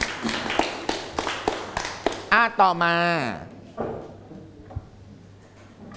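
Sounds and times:
classroom students clapping for a student: 0.0s - 2.5s
busy classroom background: 0.0s - 5.9s
speech: 2.4s - 4.1s.

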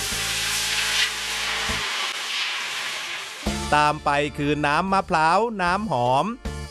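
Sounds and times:
water poured into a hot brass pan on a stove: 0.0s - 3.9s
speech: 3.7s - 6.5s.

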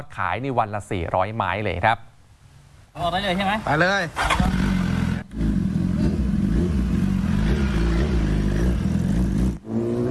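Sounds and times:
speech: 0.0s - 2.1s, 3.0s - 4.6s
big motorcycle engine revving: 4.2s - 10.0s.

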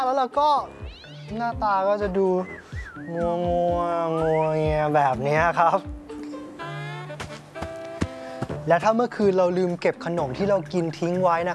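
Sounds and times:
speech: 0.0s - 6.0s, 8.7s - 11.5s
cat yowling in a fight with a dog: 0.6s - 1.6s.

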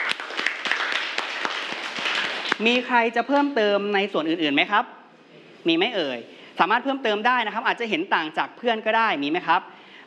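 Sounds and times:
small group clapping: 0.0s - 2.7s
speech: 2.6s - 5.0s, 5.6s - 9.7s.

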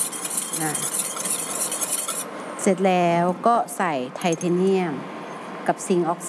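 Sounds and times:
stirring an oil mixture for a homemade cosmetic blend: 0.0s - 2.4s
speech: 0.6s - 1.1s, 2.6s - 6.2s.

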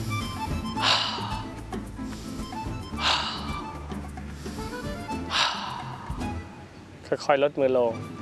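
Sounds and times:
slow airy breathing in through nose and out through mouth: 0.0s - 6.5s
speech: 7.1s - 8.2s.

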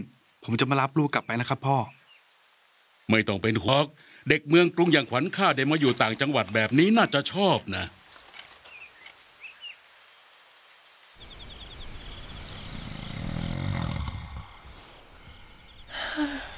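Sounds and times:
speech: 0.0s - 2.0s, 3.1s - 8.0s
loud raspy snoring: 12.6s - 15.6s.

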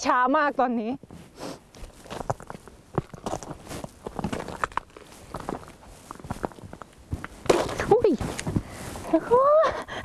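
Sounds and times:
speech: 0.0s - 1.6s, 8.1s - 8.4s, 9.1s - 9.9s
footsteps shuffling on frozen river ice: 1.7s - 8.6s.

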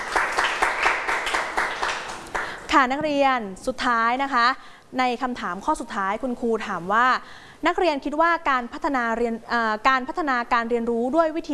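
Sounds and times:
students clapping for themselves in a class: 0.0s - 2.7s
speech: 2.8s - 11.5s.

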